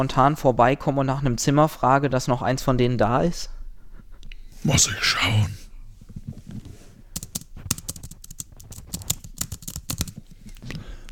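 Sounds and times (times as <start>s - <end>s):
speech: 0.0s - 3.6s, 4.6s - 5.6s
rapid typing on a computer keyboard: 7.2s - 10.2s.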